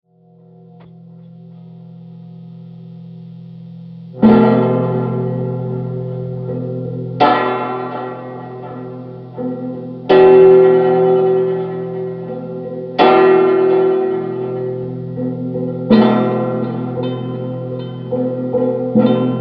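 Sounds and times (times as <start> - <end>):
plucked guitar game music: 3.9 - 19.3.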